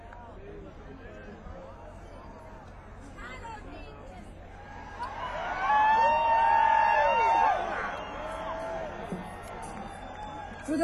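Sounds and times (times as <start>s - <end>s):
concert audience cheering and whooping in the rain: 4.6s - 10.8s.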